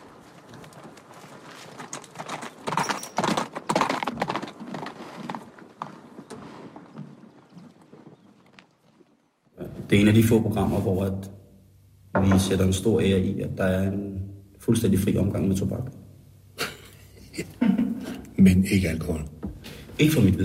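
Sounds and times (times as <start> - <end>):
horse hooves clip-clopping: 0.0 - 9.6
speech: 9.9 - 11.4, 12.3 - 16.0, 18.4 - 19.3, 20.0 - 20.4
laughter: 16.6 - 18.4.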